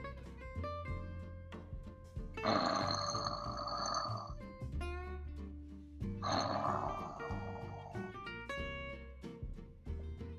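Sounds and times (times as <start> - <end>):
soft music: 0.0 - 10.3
loud rasping snores of a sleeping wolf: 2.4 - 4.1, 6.2 - 8.0.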